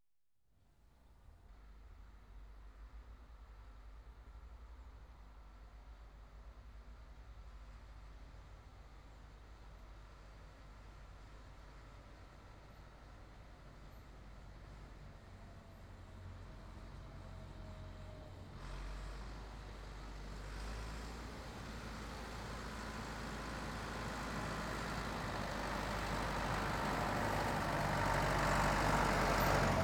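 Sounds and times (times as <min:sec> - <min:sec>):
Ford 7610 farm tractor engine: 0:20.0 - 0:29.8.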